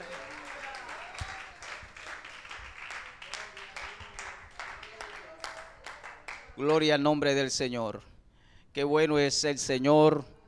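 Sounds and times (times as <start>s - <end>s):
audience applauding: 0.0s - 6.6s
speech: 6.6s - 8.1s, 8.8s - 10.4s.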